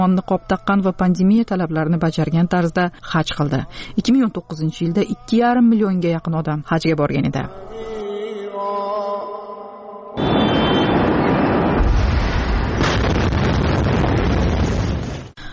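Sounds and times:
speech: 0.0s - 8.0s
explosion in Beirut captured on a mobile phone: 10.2s - 15.4s.

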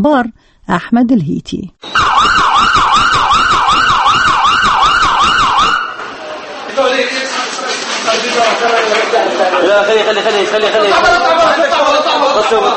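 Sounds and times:
speech: 0.0s - 2.9s, 8.2s - 12.7s
ambulance siren wailing during an emergency drill: 1.8s - 6.2s
laughter: 6.9s - 12.7s.

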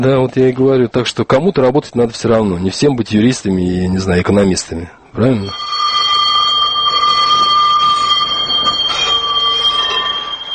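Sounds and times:
speech: 0.0s - 5.8s
low rumbling drone of passing tram: 5.5s - 10.5s
tram wheels squealing on rails: 5.5s - 10.5s.

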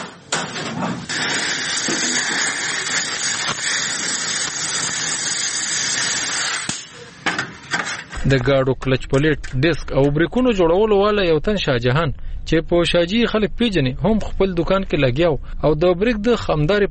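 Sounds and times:
gas torch flame hissing from a thin brass pipe in a workshop: 0.2s - 8.2s
speech: 8.3s - 16.8s.

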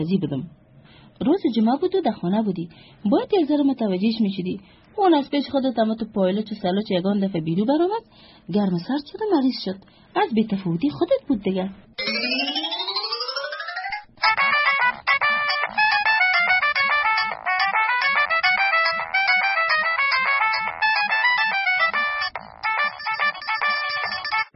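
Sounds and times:
speech: 0.0s - 0.6s, 1.2s - 12.7s
phone ringtone for an incoming call at night: 12.0s - 24.5s.

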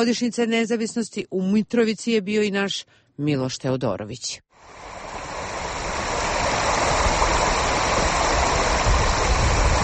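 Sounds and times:
speech: 0.0s - 5.0s
flowing river water rushing: 4.6s - 9.8s.

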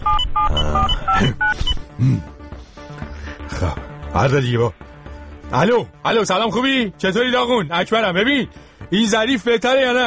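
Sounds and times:
touch-tone keypad beeps of a telephone number being dialed: 0.0s - 1.8s
speech: 2.0s - 2.3s, 3.6s - 4.8s, 5.5s - 10.0s.

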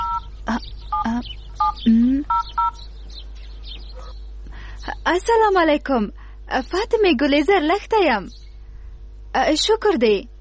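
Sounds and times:
telephone keypad tones as a number is dialed: 0.0s - 0.3s, 0.9s - 2.8s
speech: 0.5s - 2.5s, 5.0s - 8.4s, 9.3s - 10.3s.

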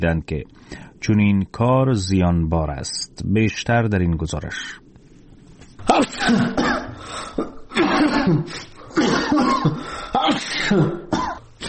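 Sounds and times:
speech: 0.0s - 4.8s, 5.8s - 6.8s, 8.2s - 11.0s
sick man coughing in bed: 5.8s - 11.6s
sick man sneezing in bed: 5.8s - 11.6s.

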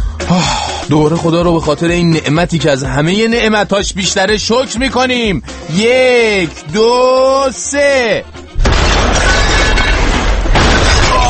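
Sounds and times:
speech: 0.4s - 8.4s
crashing, shattering debris: 8.6s - 11.2s
explosion boom sound effect: 8.6s - 11.2s.

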